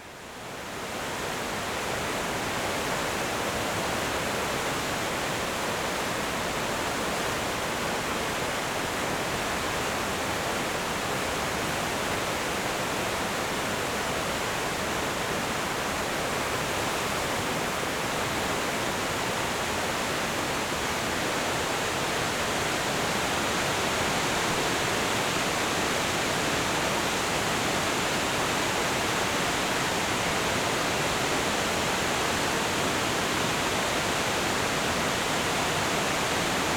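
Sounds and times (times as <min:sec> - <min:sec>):
rushing mountain river: 0:00.2 - 0:36.7.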